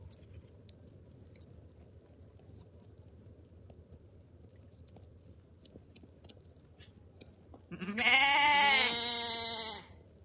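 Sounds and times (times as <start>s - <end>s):
faint low hum: 0.0s - 10.2s
lamb bleating: 7.7s - 9.9s.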